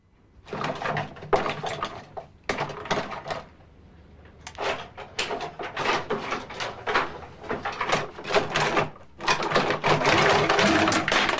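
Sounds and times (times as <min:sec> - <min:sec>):
small cosmetics clattering as someone rummages through a drawer: 0:00.4 - 0:03.6, 0:04.3 - 0:11.3.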